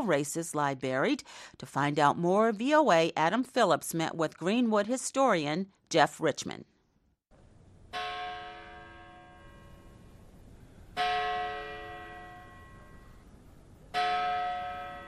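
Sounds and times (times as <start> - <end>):
speech: 0.0 - 6.7
large cemetery entrance bell tolling: 7.9 - 10.2, 10.9 - 13.3, 13.9 - 15.0.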